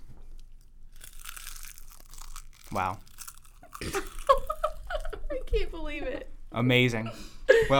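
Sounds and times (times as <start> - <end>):
crunchy munching bite close to microphone: 0.9 - 4.8
speech: 2.7 - 3.1, 3.8 - 4.1, 5.5 - 7.7.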